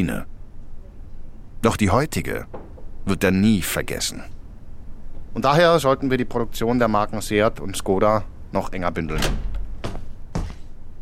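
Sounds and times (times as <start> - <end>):
speech: 0.0 - 0.3, 1.6 - 4.4, 5.3 - 9.5
low steady rumble: 0.0 - 10.9
board meeting room door latch and handle clunks: 2.5 - 3.0, 9.1 - 10.0.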